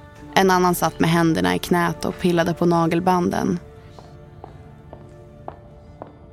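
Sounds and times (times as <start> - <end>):
speech: 0.3 - 3.7
high-heel footsteps clicking in a corridor: 2.0 - 6.3.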